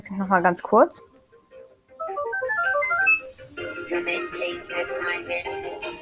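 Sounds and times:
speech: 0:00.0 - 0:01.1, 0:03.9 - 0:06.0
bright chiming electronic notes like a jingle: 0:02.1 - 0:03.2
buzzy synthetic game sound effects: 0:02.1 - 0:03.2.

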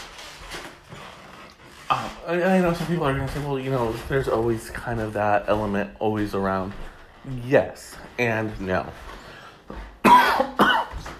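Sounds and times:
speech: 0:02.3 - 0:09.9
harsh coughs: 0:10.0 - 0:11.1.

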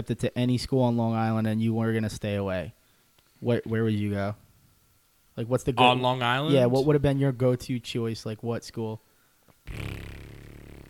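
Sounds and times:
speech: 0:00.0 - 0:02.8, 0:03.4 - 0:04.4, 0:05.4 - 0:10.2
fart: 0:09.6 - 0:10.8.

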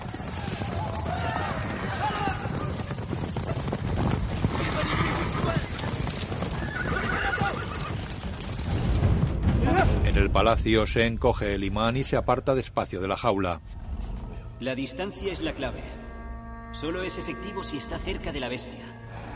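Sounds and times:
horses neighing: 0:00.0 - 0:08.7
galloping hooves of horses ridden in a valley: 0:00.0 - 0:09.4
speech: 0:10.4 - 0:13.8, 0:14.6 - 0:16.0, 0:16.8 - 0:19.0.

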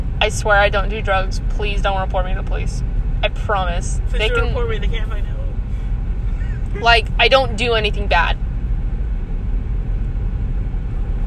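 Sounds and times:
road noise inside a car driving to a house: 0:00.0 - 0:11.2
speech: 0:00.2 - 0:05.4, 0:06.8 - 0:08.4.

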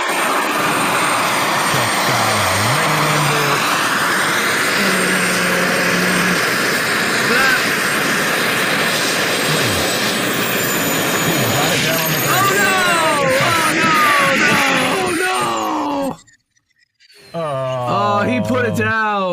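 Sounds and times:
helicopter flying overhead: 0:00.0 - 0:19.2.

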